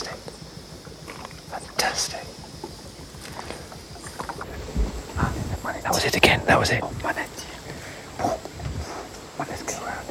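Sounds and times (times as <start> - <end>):
low rumbling water: 0.0 - 10.0
manatee surfacing with a whoosh of breath and water: 0.0 - 10.0
speech: 1.8 - 2.4, 6.0 - 7.2
wind noise: 3.1 - 10.0.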